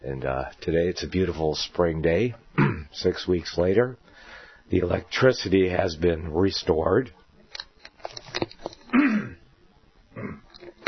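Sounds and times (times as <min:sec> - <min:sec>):
speech: 0:00.0 - 0:04.1, 0:04.7 - 0:07.2
throat clearing: 0:02.6 - 0:02.9, 0:08.9 - 0:09.4, 0:10.2 - 0:10.5
quiet breathy noises: 0:04.0 - 0:04.7, 0:10.1 - 0:10.8.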